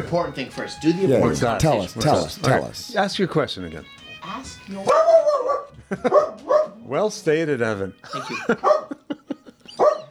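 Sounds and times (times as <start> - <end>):
speech: 0.1 - 9.0
dog barking: 4.9 - 6.8, 8.3 - 9.0, 9.7 - 10.0
laughter: 5.7 - 6.6, 8.0 - 10.0.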